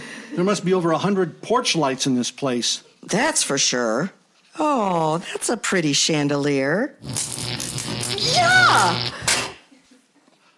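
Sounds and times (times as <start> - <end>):
speech: 0.3 - 9.3
bug zapper on a porch electric crack: 7.0 - 9.6.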